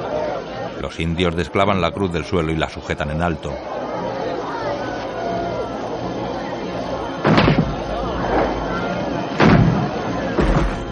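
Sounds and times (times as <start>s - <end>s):
constant rumbling noise: 0.0s - 10.8s
speech: 0.8s - 3.8s
heavy cannon booms: 7.2s - 7.8s, 9.4s - 10.8s
soldiers firing guns attacking a jungle village: 7.2s - 7.8s, 9.4s - 10.8s.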